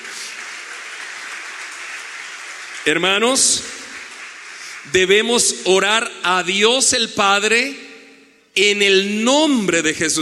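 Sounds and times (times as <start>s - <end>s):
congregation applauding during a church service: 0.0s - 5.7s
speech: 2.8s - 3.8s, 4.8s - 7.9s, 8.6s - 10.2s.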